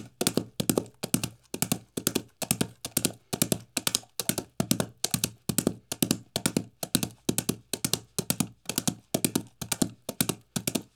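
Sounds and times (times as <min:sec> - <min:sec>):
horse galloping on hard dirt: 0:00.0 - 0:10.9.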